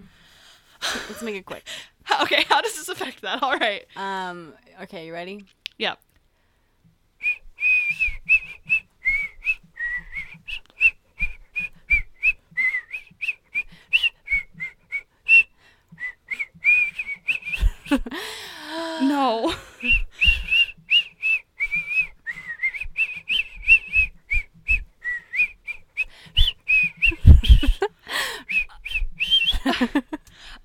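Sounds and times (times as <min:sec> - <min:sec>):
speech: 0:00.8 - 0:06.0
person whistling a tune: 0:07.2 - 0:18.0, 0:19.8 - 0:30.1
laughter-like sounds: 0:17.6 - 0:18.2, 0:27.1 - 0:28.8, 0:29.5 - 0:30.3.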